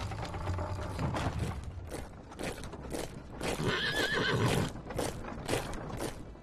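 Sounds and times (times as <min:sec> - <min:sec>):
horse hooves clip-clopping: 0:00.0 - 0:06.4
horses neighing: 0:03.5 - 0:04.8.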